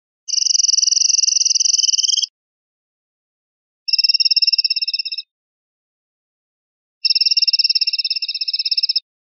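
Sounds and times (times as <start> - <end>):
linnet singing a carretilla phrase: 0.3 - 2.3, 3.9 - 5.3, 7.0 - 9.0.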